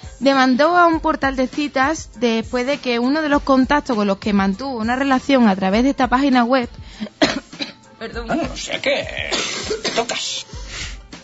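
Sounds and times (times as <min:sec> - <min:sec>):
speech: 0:00.2 - 0:07.2, 0:08.0 - 0:10.6
harsh coughs and throat-clearing bursts: 0:07.1 - 0:10.4.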